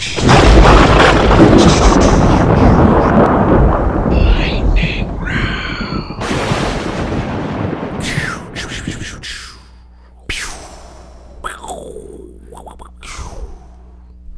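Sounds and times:
thunder crack sound effect rolling into heavy rumble: 0.5 - 7.9
faint voices: 9.2 - 14.3.

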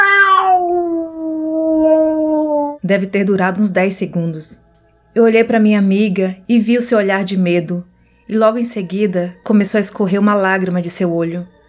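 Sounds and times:
cat meowing loudly: 0.0 - 2.8
speech: 2.9 - 4.6, 5.2 - 11.6.

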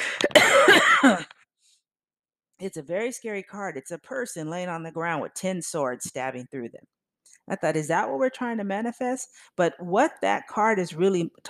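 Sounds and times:
muffled coughs behind covered microphone: 0.1 - 1.4
speech: 2.6 - 11.4.

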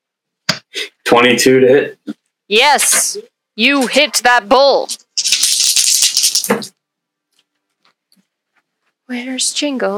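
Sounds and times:
speech: 1.1 - 5.0, 9.1 - 9.9
dice rattling and rolling in a cup or hand: 4.9 - 6.7.

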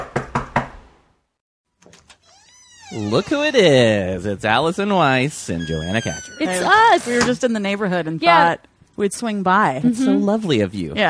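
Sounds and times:
firm knocks on a door: 0.0 - 0.8
speech: 2.9 - 11.0.

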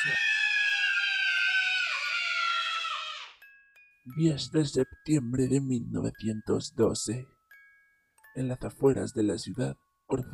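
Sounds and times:
child screaming: 0.0 - 3.4
speech: 4.1 - 7.4, 8.4 - 10.3.

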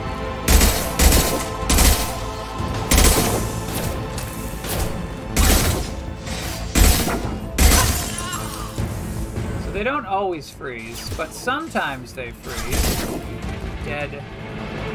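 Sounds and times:
video game gunfire: 0.5 - 4.0, 4.6 - 6.0, 6.7 - 8.2
speech: 9.8 - 14.4.

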